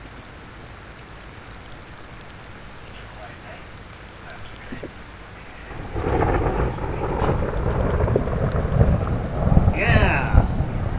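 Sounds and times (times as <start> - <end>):
rain falling: 0.0 - 10.9
thunder rumbling: 4.3 - 10.9.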